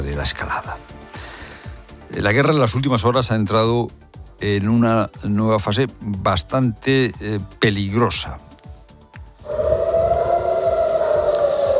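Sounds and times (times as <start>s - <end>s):
speech: 0.0s - 1.2s, 2.1s - 8.5s
air raid siren wailing across a city: 9.4s - 11.7s.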